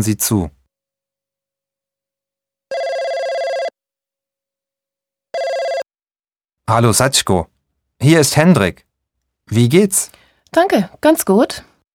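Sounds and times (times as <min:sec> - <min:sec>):
speech: 0:00.0 - 0:00.6, 0:06.7 - 0:08.9, 0:09.5 - 0:11.7
electronic telephone ringing at the start of a phone call: 0:02.7 - 0:03.8, 0:05.3 - 0:05.8.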